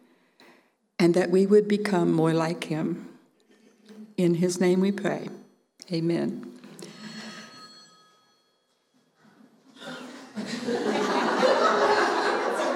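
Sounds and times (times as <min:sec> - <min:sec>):
speech: 0:01.0 - 0:03.1, 0:04.2 - 0:06.6
bright electronic ring of a phone or doorbell: 0:06.6 - 0:09.1
room full of people laughing: 0:09.3 - 0:12.7.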